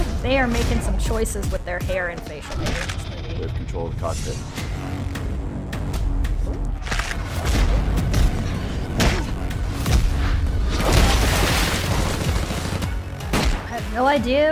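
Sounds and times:
action movie trailer score: 0:00.0 - 0:14.5
speech: 0:00.2 - 0:05.2, 0:13.8 - 0:14.5
gunfire in an action movie trailer: 0:07.2 - 0:13.8.

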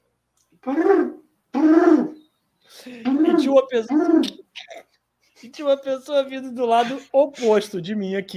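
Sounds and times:
speech: 0:00.6 - 0:01.2, 0:03.5 - 0:04.4, 0:05.4 - 0:08.3
person imitating pigeon cooing: 0:00.6 - 0:02.2, 0:02.9 - 0:04.8.

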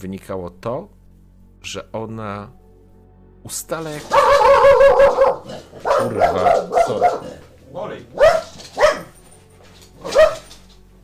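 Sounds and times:
speech: 0:00.0 - 0:01.0, 0:01.6 - 0:02.6, 0:03.4 - 0:08.4
dog barking by a balcony window: 0:04.0 - 0:07.5, 0:08.1 - 0:09.2, 0:10.0 - 0:10.6.

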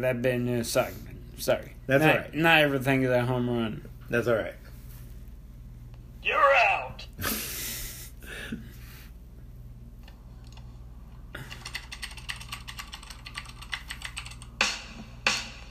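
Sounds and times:
speech: 0:00.0 - 0:04.6, 0:06.2 - 0:07.4
typing on a computer keyboard: 0:11.5 - 0:14.5.

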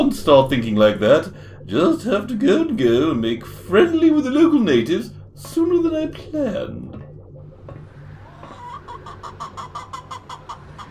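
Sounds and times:
low droning hum: 0:00.0 - 0:10.8
speech: 0:00.1 - 0:07.0
hens clucking and squawking: 0:08.2 - 0:10.8.

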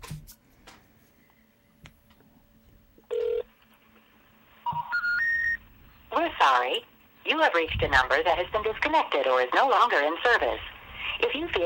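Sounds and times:
phone line ringing through a telephone receiver: 0:03.1 - 0:03.5, 0:04.7 - 0:05.6
rising beeps through a telephone receiver: 0:04.7 - 0:05.6
speech: 0:06.5 - 0:11.6.

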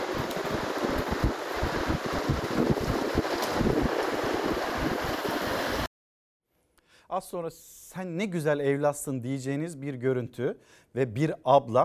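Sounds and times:
strong storm wind buffeting the microphone: 0:00.0 - 0:05.9
speech: 0:07.1 - 0:11.8.

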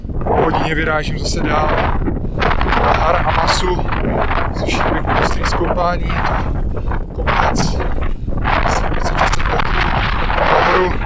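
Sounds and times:
wind blowing hard across a hilltop: 0:00.0 - 0:11.0
speech: 0:00.7 - 0:07.9, 0:10.8 - 0:11.0.

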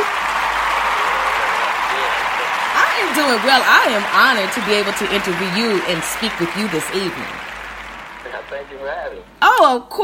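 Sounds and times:
group applauding: 0:00.0 - 0:09.8
speech: 0:03.2 - 0:07.5, 0:08.5 - 0:10.0.

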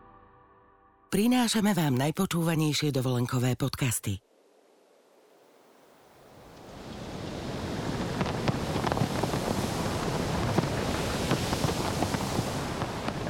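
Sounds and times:
speech: 0:01.1 - 0:04.3
faint surf: 0:04.3 - 0:13.2
seaside wind rushing past the microphone: 0:06.0 - 0:13.2
small crackles: 0:07.9 - 0:13.2.

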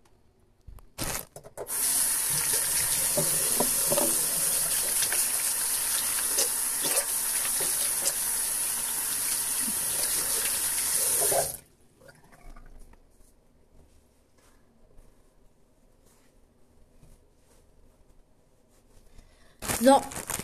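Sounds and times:
tap water running in a bathroom: 0:01.7 - 0:11.6
speech: 0:19.8 - 0:20.2.

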